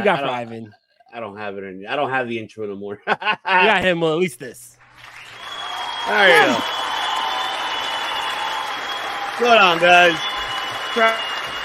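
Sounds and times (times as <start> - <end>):
laughter: 0.0 - 0.7, 2.9 - 4.0, 6.1 - 6.7
speech: 0.0 - 4.8, 6.1 - 6.8, 9.4 - 10.3, 10.9 - 11.3
applause: 4.9 - 11.6
person shouting or cheering: 6.1 - 6.6.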